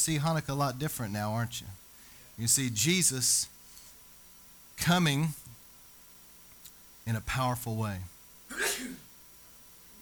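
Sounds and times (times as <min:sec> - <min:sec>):
speech: 0:00.0 - 0:01.8, 0:02.4 - 0:03.6, 0:04.8 - 0:05.6, 0:07.1 - 0:09.0
person sneezing: 0:08.5 - 0:09.1.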